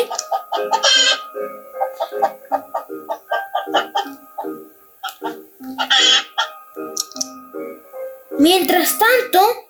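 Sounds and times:
hen clucking: 0.0 - 6.6
speech: 8.4 - 9.6.

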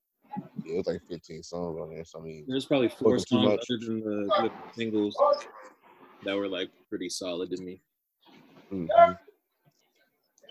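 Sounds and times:
speech: 0.7 - 7.9, 8.7 - 9.2
dog barking: 4.3 - 4.6, 5.2 - 5.8, 8.9 - 9.2.

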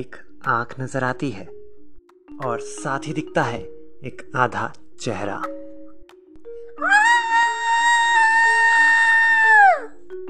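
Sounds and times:
speech: 0.0 - 1.6, 2.4 - 5.6, 6.8 - 7.0
woman screaming loudly: 6.8 - 10.0.

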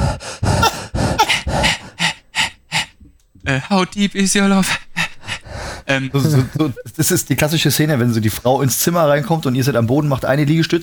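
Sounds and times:
light breathy panting after exercise: 0.0 - 3.2, 4.6 - 6.7
speech: 3.5 - 4.9, 5.9 - 10.8
laughter: 6.2 - 7.0.

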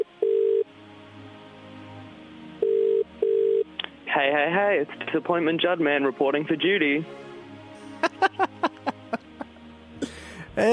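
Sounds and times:
telephone ringing tone after dialing: 0.0 - 0.7, 2.6 - 3.7
speech: 4.2 - 7.2, 10.6 - 10.7
laughter: 7.8 - 9.5.

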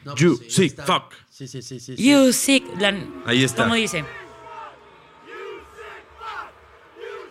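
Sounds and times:
speech: 0.0 - 4.2
large stadium crowd shouting: 2.1 - 7.2.

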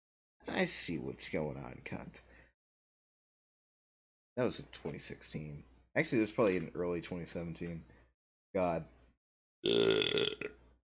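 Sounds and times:
speech: 0.6 - 2.3, 4.4 - 9.0, 9.6 - 10.6
person burping: 9.6 - 10.7.

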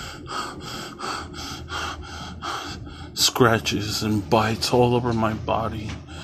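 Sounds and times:
heavy ragged gasping breaths: 0.0 - 3.2
speech: 3.2 - 6.1.

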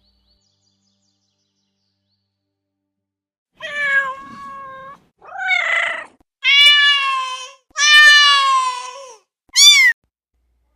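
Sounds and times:
cat meowing: 3.6 - 10.0.

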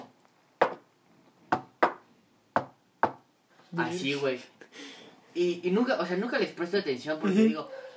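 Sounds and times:
sharp knocks on a hard surface imitating rooftop thumps: 1.5 - 2.0, 2.6 - 3.2
speech: 3.7 - 4.8, 5.4 - 7.8.

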